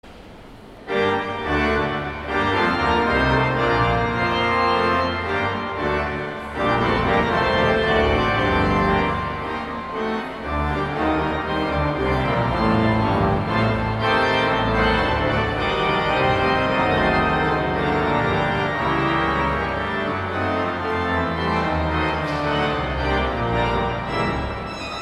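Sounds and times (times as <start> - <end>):
pipe organ postlude in a cathedral in Jacksonville Florida: 0.6 - 24.9.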